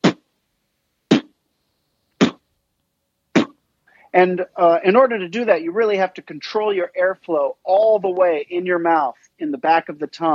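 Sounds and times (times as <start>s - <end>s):
beatboxed bass drum kicks made with the lips: 1.1s - 1.3s
speech: 4.1s - 10.3s.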